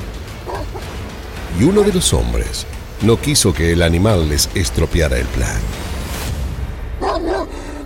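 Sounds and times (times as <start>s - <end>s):
low rumbling background: 0.0s - 7.8s
dog barking: 0.5s - 0.8s, 7.0s - 7.8s
speech: 1.6s - 5.8s.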